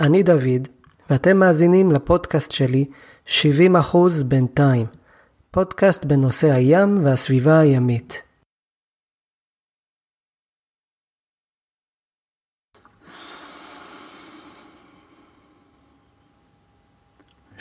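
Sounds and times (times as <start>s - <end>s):
speech: 0.0s - 8.3s
long hollow breath rushing through a snorkel tube: 12.9s - 16.2s.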